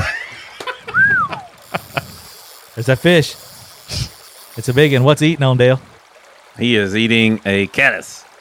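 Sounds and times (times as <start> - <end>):
whistling tone rising and falling: 0.9 - 1.5
water splashing and sloshing: 1.4 - 6.6
speech: 2.8 - 3.4, 4.6 - 5.9, 6.6 - 8.3.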